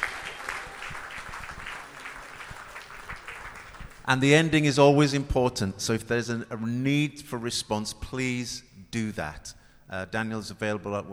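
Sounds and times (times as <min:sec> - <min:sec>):
audience applause: 0:00.0 - 0:04.1
speech: 0:04.1 - 0:11.1.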